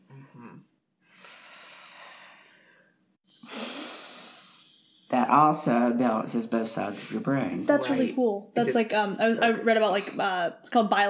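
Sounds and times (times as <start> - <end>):
airy nasal breathing during an alternate-nostril breathing exercise: 0.2 - 5.1
speech: 5.3 - 11.0.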